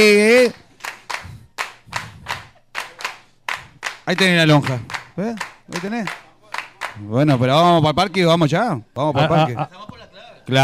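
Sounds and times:
speech: 0:00.0 - 0:00.6, 0:04.1 - 0:06.2, 0:07.0 - 0:10.6
a few people clapping: 0:00.0 - 0:08.3
laughter: 0:09.0 - 0:10.3.

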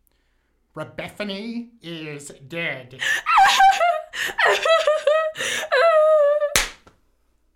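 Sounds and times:
speech: 0:00.8 - 0:05.8
sharp slap: 0:06.6 - 0:07.0.

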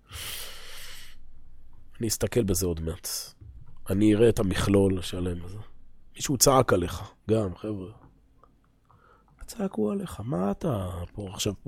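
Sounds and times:
deep breath drawn close to the microphone: 0:00.0 - 0:01.2, 0:08.8 - 0:09.4
speech: 0:02.0 - 0:08.0, 0:09.5 - 0:11.6.

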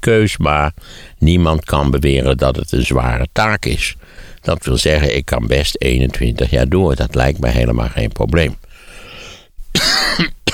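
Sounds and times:
speech: 0:00.0 - 0:08.6
person with a heavy cold coughing: 0:09.7 - 0:10.5.

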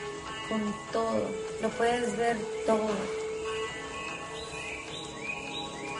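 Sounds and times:
birds chirping in a jungle: 0:00.0 - 0:05.9
speech: 0:00.5 - 0:03.2.

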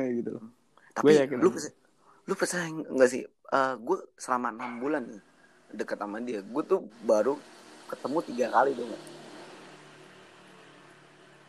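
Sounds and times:
speech: 0:00.0 - 0:09.2
car passing outside at night: 0:04.6 - 0:11.4.

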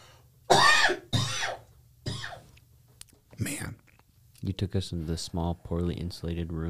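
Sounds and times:
person coughing harshly: 0:00.5 - 0:02.5, 0:03.4 - 0:03.8
speech: 0:04.4 - 0:06.6.

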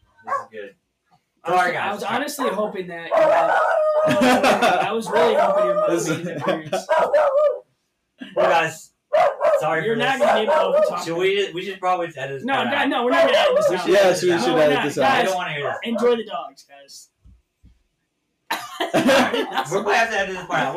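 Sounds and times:
dogs barking and yipping: 0:00.2 - 0:00.6, 0:02.4 - 0:07.6, 0:09.1 - 0:11.1, 0:13.1 - 0:16.2
speech: 0:00.5 - 0:00.8, 0:01.4 - 0:07.6, 0:08.4 - 0:17.1, 0:18.9 - 0:20.7
laughter: 0:04.0 - 0:07.0, 0:09.6 - 0:10.9, 0:18.5 - 0:20.7.

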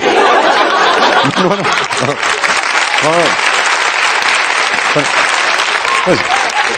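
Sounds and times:
crowd laughing: 0:00.0 - 0:03.6, 0:04.6 - 0:06.7
crowd cheering: 0:00.0 - 0:06.7
studio audience applause: 0:00.0 - 0:06.7.

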